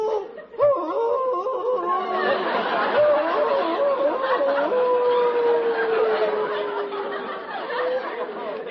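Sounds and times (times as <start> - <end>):
man howling like a wolf: 0.0 - 6.9
laughter: 0.0 - 8.7
murmur of voices: 2.0 - 8.7.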